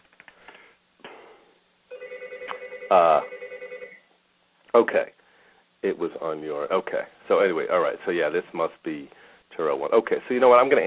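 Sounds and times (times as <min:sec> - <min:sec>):
telephone ringing with an electronic trill: 0:01.9 - 0:04.1
speech: 0:02.9 - 0:03.4, 0:04.7 - 0:05.2, 0:05.8 - 0:10.8.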